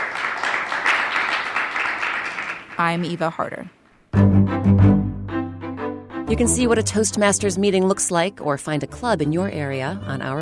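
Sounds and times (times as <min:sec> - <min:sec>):
audience applause: 0:00.0 - 0:02.8
speech: 0:02.8 - 0:04.8, 0:06.3 - 0:10.3.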